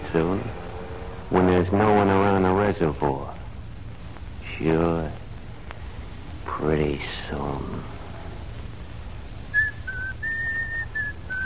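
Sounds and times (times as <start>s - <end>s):
low hum: 0.0s - 11.4s
speech: 0.1s - 0.6s, 1.3s - 3.3s, 4.6s - 5.2s, 6.6s - 8.0s
person whistling a simple tune indoors: 9.6s - 11.4s.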